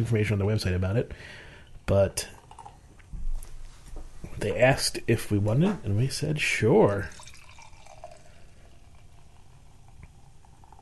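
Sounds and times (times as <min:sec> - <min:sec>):
speech: 0:00.0 - 0:02.4, 0:04.4 - 0:07.2
dark hard root beer poured into a glass: 0:02.2 - 0:02.8, 0:06.9 - 0:10.8
fizzy crackling hiss of hard root beer: 0:06.1 - 0:10.8.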